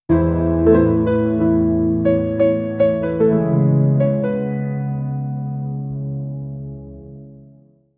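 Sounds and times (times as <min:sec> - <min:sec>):
warm emotional cartoon soft piano music: 0:00.1 - 0:07.9.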